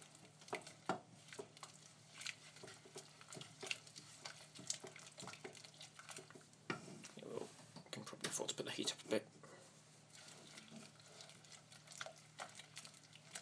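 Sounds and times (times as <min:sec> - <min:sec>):
faint bubbling sizzle of reducing liquid: 0:00.0 - 0:13.4
stirring a reducing liquid in a pan on the heat: 0:00.0 - 0:13.4
speech: 0:08.6 - 0:09.4.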